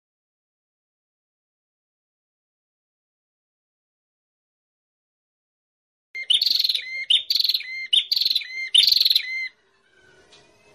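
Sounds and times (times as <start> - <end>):
prinia rattling calls: 6.2 - 9.5.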